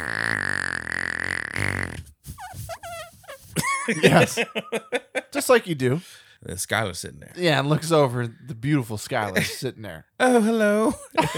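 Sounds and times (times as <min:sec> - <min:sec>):
voice imitating a long loud buzzing fart: 0:00.0 - 0:03.6
squeaky laughter-like vocal sounds: 0:02.3 - 0:05.2
speech: 0:03.9 - 0:11.3.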